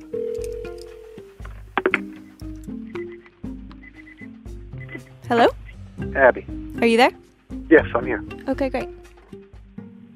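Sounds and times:
telephone keypad tones dialing a call in an office: 0:00.1 - 0:01.4
speech: 0:05.3 - 0:09.0.

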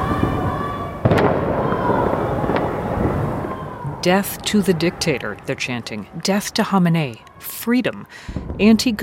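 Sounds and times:
fireworks exploding outside: 0:00.0 - 0:07.5, 0:08.2 - 0:09.0
steady rumbling background of outdoor noise: 0:00.0 - 0:09.0
speech: 0:04.0 - 0:09.0.

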